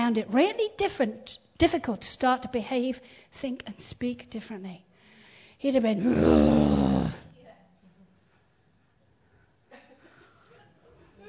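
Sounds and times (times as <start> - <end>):
speech: 0.1 - 4.9, 5.6 - 7.2
person growling imitating an animal: 6.0 - 7.3.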